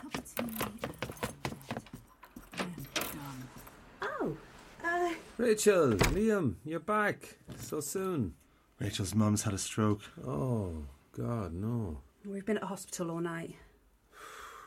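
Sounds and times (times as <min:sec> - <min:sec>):
metallic jangling and clinking: 0:00.4 - 0:03.8
speech: 0:05.4 - 0:13.7.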